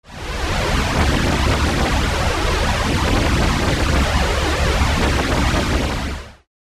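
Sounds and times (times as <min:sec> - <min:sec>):
synthesizer chorus: 0:00.1 - 0:06.5.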